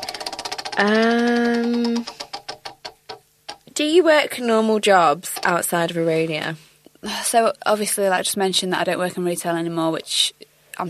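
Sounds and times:
prize wheel spinning and ticking: 0:00.0 - 0:03.7, 0:04.8 - 0:06.0
speech: 0:00.8 - 0:02.1, 0:03.8 - 0:10.8.

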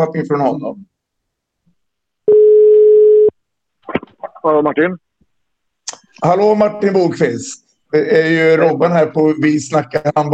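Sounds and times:
speech: 0:00.0 - 0:00.9, 0:04.4 - 0:05.0, 0:06.2 - 0:10.3
telephone ringback tone while placing a call: 0:02.3 - 0:03.3.

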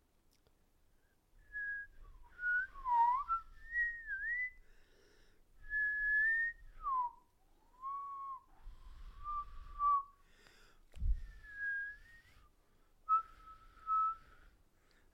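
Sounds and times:
person whistling, attempting two tones at once: 0:01.4 - 0:04.6, 0:05.7 - 0:10.2, 0:11.2 - 0:14.5.

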